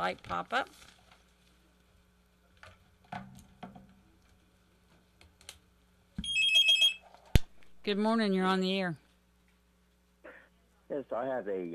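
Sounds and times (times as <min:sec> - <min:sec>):
speech: 0:00.0 - 0:01.0, 0:07.9 - 0:09.0, 0:10.9 - 0:11.7
telephone electronic trill for an incoming call: 0:06.2 - 0:07.0.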